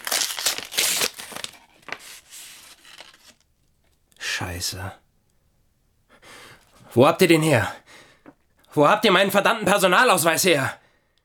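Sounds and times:
paper envelope being torn open: 0:00.0 - 0:03.4
speech: 0:04.4 - 0:05.0, 0:06.9 - 0:07.8, 0:08.7 - 0:10.8.

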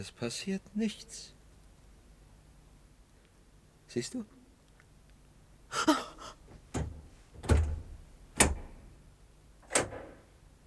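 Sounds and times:
speech: 0:00.0 - 0:01.4, 0:03.9 - 0:04.4, 0:05.7 - 0:06.1
sharp clicks of a door handle and latch: 0:06.7 - 0:08.8, 0:09.6 - 0:10.2.

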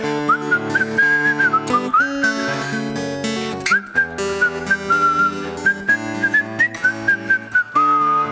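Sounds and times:
full musical backing with steady rhythmic accompaniment: 0:00.0 - 0:08.3
person whistling a bright sustained melody: 0:00.1 - 0:03.0, 0:03.6 - 0:08.3.

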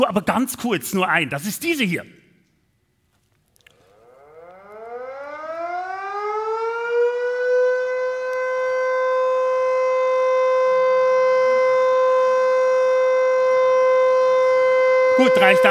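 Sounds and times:
speech: 0:00.0 - 0:02.2, 0:15.3 - 0:15.6
Austrian civil defense siren test wailing: 0:03.8 - 0:15.6.

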